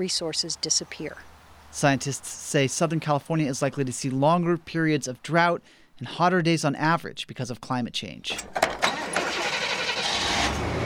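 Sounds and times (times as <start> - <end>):
speech: 0.0 - 8.8
old rust-covered truck engine cranking and starting: 8.4 - 10.8.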